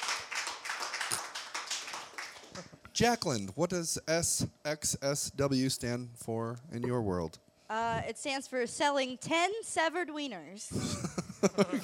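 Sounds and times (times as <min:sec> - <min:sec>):
hands clapping in applause: 0:00.0 - 0:02.7
speech: 0:03.0 - 0:11.8
laughter: 0:10.7 - 0:11.8.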